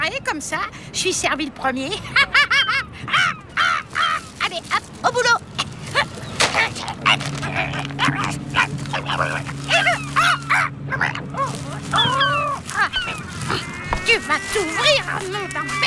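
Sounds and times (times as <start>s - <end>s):
speech: 0.0s - 2.4s, 14.1s - 15.8s
herring gull yelping and squawking: 2.4s - 4.9s, 5.6s - 15.8s
low steady mechanical hum: 3.3s - 15.8s
garbage bag plastic torn by a herring gull: 3.9s - 10.6s, 11.3s - 15.8s.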